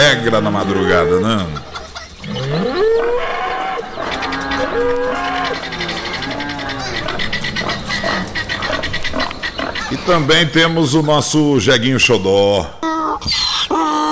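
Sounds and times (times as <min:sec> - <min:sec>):
bull mooing in loud drawn-out bellows: 0:00.0 - 0:11.0
laughter: 0:00.0 - 0:14.1
other animal noise: 0:00.0 - 0:14.1
speech: 0:00.1 - 0:01.7, 0:09.9 - 0:13.4.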